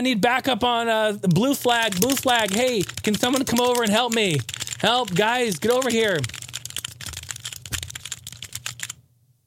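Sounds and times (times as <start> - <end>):
speech: 0.0 - 6.4
mechanical keyboard typing: 1.6 - 9.0.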